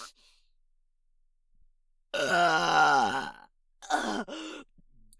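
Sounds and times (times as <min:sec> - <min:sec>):
loud burp: 0:02.2 - 0:04.3
guttural vocal bursts and grunts: 0:02.2 - 0:04.4.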